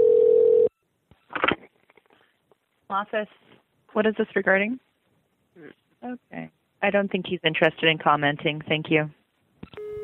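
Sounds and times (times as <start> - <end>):
telephone dial tone: 0.0 - 0.7, 9.8 - 10.0
speech: 2.9 - 4.9, 5.6 - 9.2.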